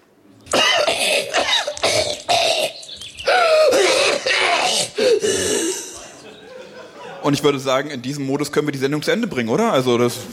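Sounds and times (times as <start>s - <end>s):
person coughing harshly: 0.5s - 6.1s
laughter: 2.8s - 7.5s
person breathing: 3.3s - 3.8s, 4.9s - 6.2s
speech: 7.3s - 10.3s.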